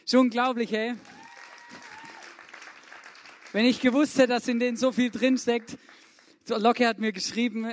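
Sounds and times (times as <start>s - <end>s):
speech: 0.1s - 1.1s, 3.5s - 7.7s
audience applause for the band: 0.9s - 6.3s
audience whistles and cheers: 1.0s - 2.6s.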